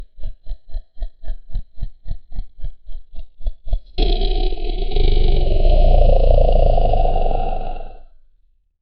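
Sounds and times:
eerie monster voice: 4.0s - 8.1s.

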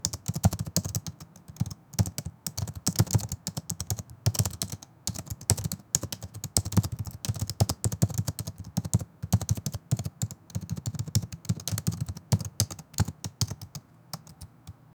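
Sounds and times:
fast typing on a laptop in an office: 0.0s - 14.9s.

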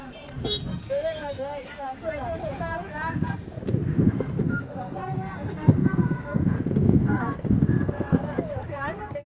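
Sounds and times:
ancient Indus Valley village ambience: 0.0s - 9.2s.

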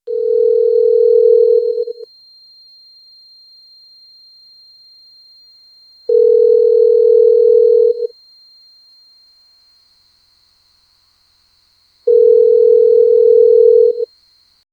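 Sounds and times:
solitary telephone ring: 0.1s - 2.0s, 6.1s - 8.1s, 12.1s - 14.0s.

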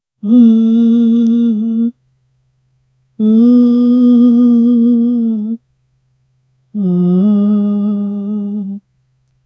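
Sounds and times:
man singing in a soft melodic voice: 0.2s - 2.0s, 3.2s - 5.6s, 6.8s - 8.8s.

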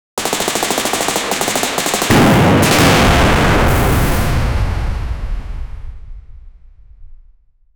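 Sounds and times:
several ballistic missiles: 0.2s - 6.3s.

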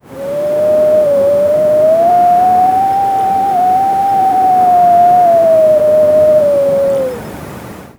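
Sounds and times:
distant wind in mountains: 0.0s - 7.9s.

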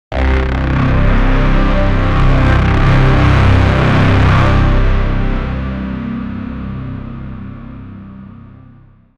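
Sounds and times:
intense electronic sting: 0.1s - 8.0s.

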